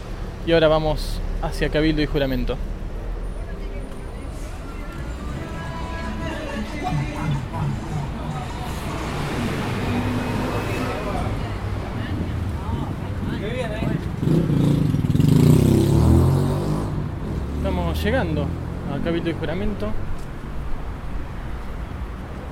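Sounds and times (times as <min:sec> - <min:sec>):
busy traffic roar at Avenida Cabildo and Juramento in Buenos Aires: 0:00.0 - 0:22.5
cars and motorcycles passing: 0:00.0 - 0:22.5
speech: 0:00.4 - 0:02.8, 0:18.1 - 0:20.1
babble of crowd voices: 0:03.3 - 0:14.2
engine revving: 0:05.0 - 0:19.4.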